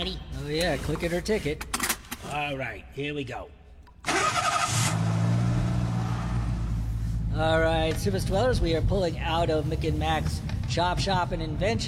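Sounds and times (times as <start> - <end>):
speech: 0.0 - 3.6, 7.3 - 11.8
car engine cranking with starter noise: 4.0 - 6.9
car engine in loud steady rumbling idle revving slightly: 4.0 - 11.8.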